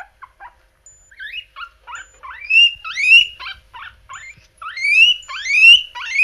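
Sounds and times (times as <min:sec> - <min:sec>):
guinea pig squealing: 0:00.0 - 0:06.2.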